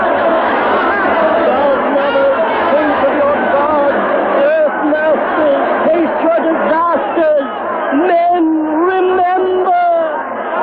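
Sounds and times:
panicked mob murmuring and chattering: 0.0 - 10.6.

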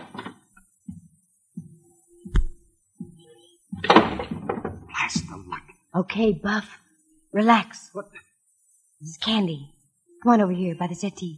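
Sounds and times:
soft wooden thunks and creaks: 0.0 - 5.6
door in a suite opening with sharp latch click: 3.8 - 4.8
speech: 5.1 - 6.8, 7.4 - 8.2, 9.0 - 11.3.

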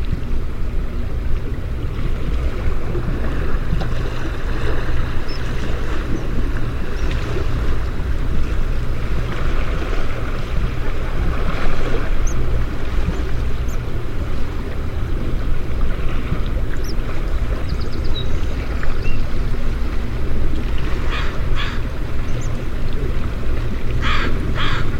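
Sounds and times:
water flowing in a steady dense rush: 0.0 - 24.9.

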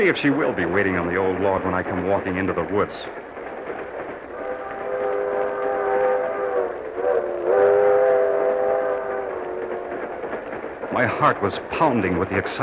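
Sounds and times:
speech: 0.0 - 3.3, 11.0 - 12.6
train rumbling along on rails: 0.0 - 12.6
loud sustained train whistle: 4.3 - 10.2.

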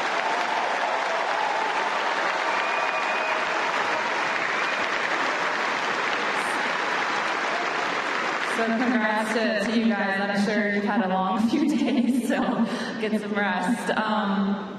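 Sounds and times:
audience applause: 0.0 - 9.3
speech: 8.6 - 14.7.

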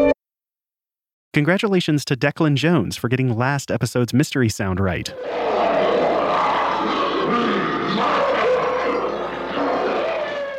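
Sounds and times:
speech: 1.4 - 5.6
deep rasping monster roar sound effect: 5.1 - 10.5.

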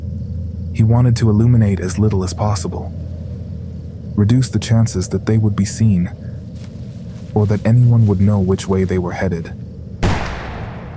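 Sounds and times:
speech: 0.8 - 3.1, 4.2 - 6.2, 7.4 - 9.6
distant gunshot among trees: 10.0 - 10.9.

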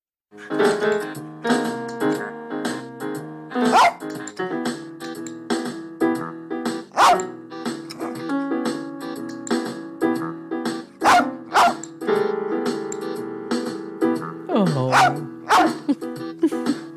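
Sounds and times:
electronic keyboard chords played by a rat terrier: 0.4 - 16.9
steady backing track: 0.4 - 16.9
blind rat terrier barking: 3.6 - 4.1, 6.9 - 7.3, 11.0 - 11.9, 14.9 - 15.9.

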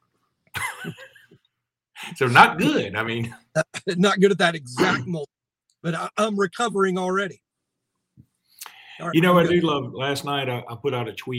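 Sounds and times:
harsh cough: 0.6 - 1.2, 2.4 - 3.9, 4.8 - 5.2
speech: 0.8 - 1.1, 2.1 - 7.4, 9.0 - 11.3.

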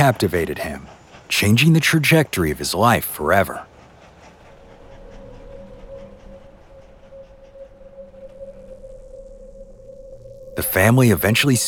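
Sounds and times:
speech: 0.0 - 3.7, 10.6 - 11.6
steam train chugging along railroad tracks: 0.0 - 11.6
steam train whistle: 4.4 - 11.6.

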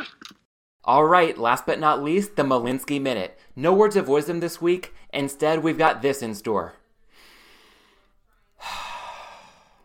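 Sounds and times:
speech: 0.9 - 6.8
deep slow ASMR-style breath: 7.1 - 9.8.

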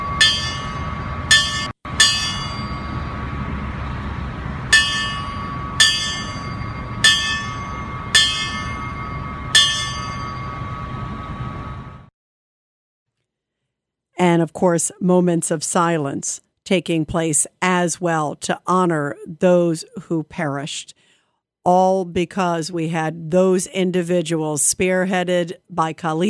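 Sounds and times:
memorial bells tolling at a ceremony: 0.0 - 12.0
constant low outdoor rumble: 0.0 - 12.1
speech: 14.3 - 21.0, 21.6 - 26.2.

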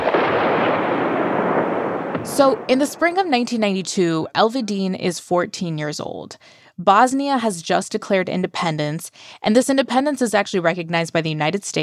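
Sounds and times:
rockets fired by air force at militia targets: 0.0 - 3.6
bombs exploding in heavy bombardment by air force on militia targets: 0.0 - 3.9
speech: 2.3 - 11.8.

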